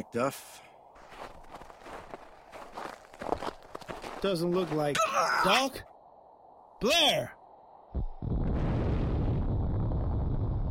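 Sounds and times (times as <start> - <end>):
speech: 0.0 - 0.7, 4.2 - 5.9, 6.8 - 7.4
sudden loud explosion: 8.0 - 10.6.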